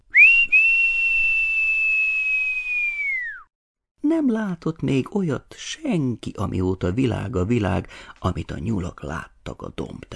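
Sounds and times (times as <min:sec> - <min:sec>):
single long high whistle sliding downward: 0:00.0 - 0:03.5
speech: 0:04.1 - 0:10.1.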